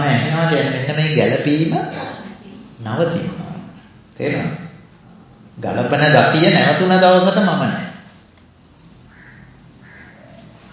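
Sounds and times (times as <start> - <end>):
speech: 0.5 - 2.1, 2.8 - 3.5, 4.2 - 4.6, 5.6 - 7.8
crow cawing: 9.1 - 10.7.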